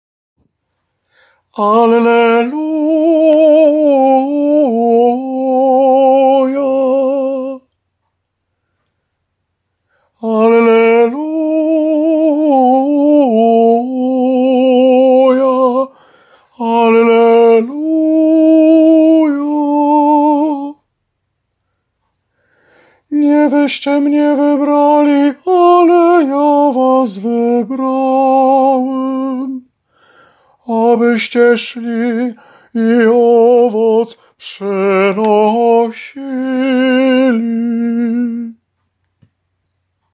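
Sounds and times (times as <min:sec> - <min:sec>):
soprano singing an alleluia: 0:01.6 - 0:07.7, 0:10.2 - 0:16.0, 0:16.6 - 0:20.8, 0:23.1 - 0:29.7, 0:30.7 - 0:38.6.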